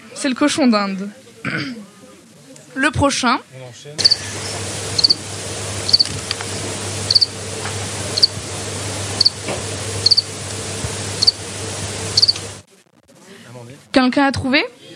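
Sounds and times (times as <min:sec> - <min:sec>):
speech: 0:00.2 - 0:01.9, 0:02.8 - 0:04.4, 0:14.0 - 0:14.8
cricket chirping: 0:04.0 - 0:04.2, 0:05.0 - 0:05.2, 0:05.9 - 0:06.1, 0:07.1 - 0:07.3, 0:10.0 - 0:10.3, 0:12.2 - 0:12.4
steady low hum: 0:04.0 - 0:12.7.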